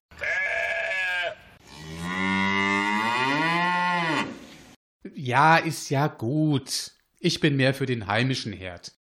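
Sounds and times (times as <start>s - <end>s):
cattle herd mooing and bellowing: 0.2s - 4.4s
speech: 5.2s - 9.0s.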